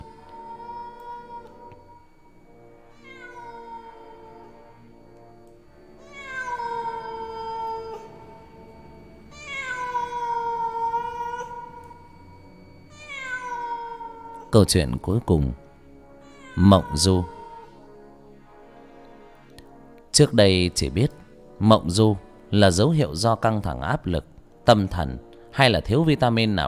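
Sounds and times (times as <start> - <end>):
stray cat yowling in the street: 0.0 - 2.1, 2.9 - 4.5, 6.0 - 12.2, 12.9 - 14.5, 16.2 - 17.8
speech: 14.5 - 15.6, 16.6 - 17.4, 20.2 - 26.6.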